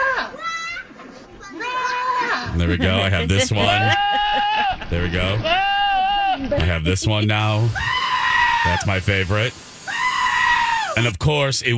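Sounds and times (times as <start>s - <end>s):
faint noise: 0.0s - 11.7s
goat bleat sound effect: 1.5s - 2.6s, 3.4s - 6.7s, 7.6s - 8.9s, 9.9s - 11.0s
laughter: 2.4s - 5.6s, 6.4s - 7.8s
speech: 2.6s - 5.7s, 6.4s - 8.0s, 8.6s - 9.6s, 11.0s - 11.7s.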